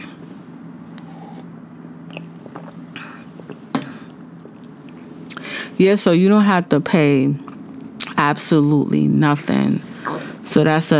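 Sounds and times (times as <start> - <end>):
person drinking water with sips and swallowing: 0.0 - 5.8, 7.4 - 8.2, 9.9 - 10.5
steady low hum: 0.0 - 10.9
small wet mouth clicks: 1.0 - 5.5, 7.4 - 8.2, 10.0 - 10.4
speech: 5.8 - 7.4, 8.2 - 9.9, 10.5 - 10.9.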